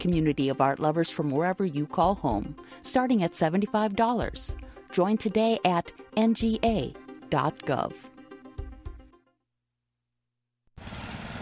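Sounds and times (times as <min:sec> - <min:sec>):
speech: 0:00.0 - 0:08.1
gas lawn mower engine revving in hot, dry weather: 0:10.8 - 0:11.4.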